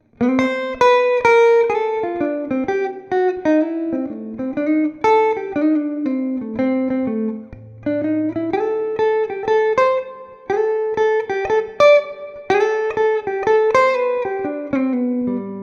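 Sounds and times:
Epiphone SG G-400 Pro electric guitar lick played clean on the neck pickup: 0.0 - 15.6.

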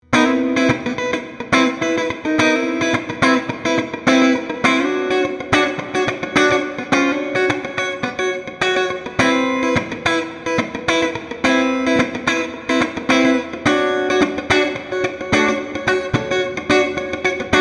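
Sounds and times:
Fender Squier Bullet Strat HSS neck pickup clean funk guitar: 0.0 - 17.5.

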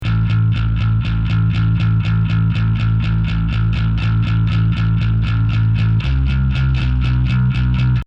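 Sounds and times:
processed bass: 0.0 - 8.0.

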